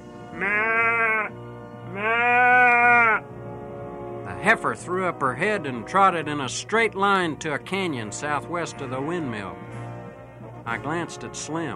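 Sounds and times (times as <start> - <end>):
speech: 0.4 - 0.7, 4.4 - 9.8, 10.7 - 11.7
man imitating a bawling calf to draw a heifer: 0.4 - 1.3, 1.9 - 3.2.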